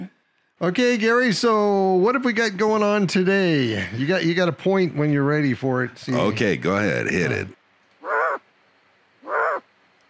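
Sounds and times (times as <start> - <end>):
speech: 0.6 - 8.2
harsh raspy owl calls: 8.0 - 8.5, 9.2 - 9.7.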